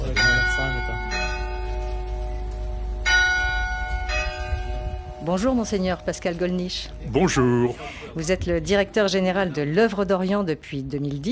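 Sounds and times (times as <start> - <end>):
newly cast church bells made in Normandy ringing in a slow steady peal at a convent church: 0.1 - 7.0
speech: 5.2 - 11.3.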